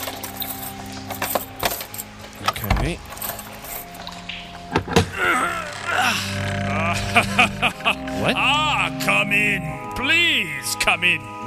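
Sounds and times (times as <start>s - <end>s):
keys jangling and clinking: 0.0s - 4.2s
speech: 2.8s - 3.2s, 9.4s - 11.4s
laughter: 5.1s - 9.6s.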